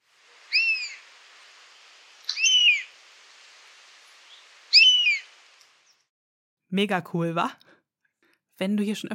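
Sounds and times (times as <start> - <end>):
European honey buzzard whistled calls: 0.5 - 1.0, 2.3 - 2.9, 4.3 - 5.3
speech: 6.7 - 7.7, 8.6 - 9.1.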